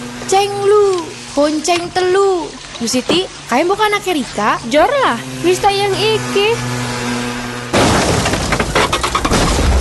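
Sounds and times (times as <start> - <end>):
speech: 0.3 - 6.8
debris scraping: 7.5 - 9.7
glass breaking: 7.7 - 9.7
traffic accident crash: 7.7 - 9.7.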